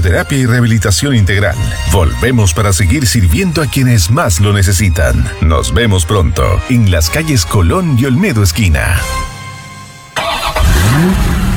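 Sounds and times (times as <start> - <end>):
speech: 0.0 - 9.3, 10.9 - 11.4
car engine starting and revving: 10.2 - 11.5.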